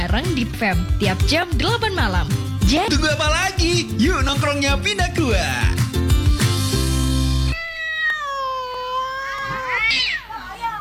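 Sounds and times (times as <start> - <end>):
speech: 0.2 - 5.8
loud music: 1.0 - 7.5
cat meowing loudly: 7.5 - 10.4.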